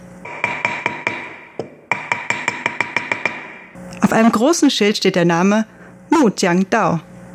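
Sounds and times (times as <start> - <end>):
hammering in a large woodworking workshop hall in Taichung: 0.3 - 3.8
speech: 4.1 - 7.1.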